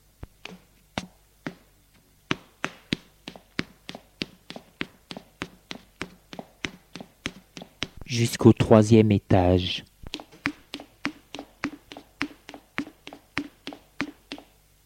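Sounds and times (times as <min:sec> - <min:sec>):
footsteps climbing worn stone stairs: 0:02.3 - 0:08.0, 0:10.0 - 0:14.5
speech: 0:08.1 - 0:09.9.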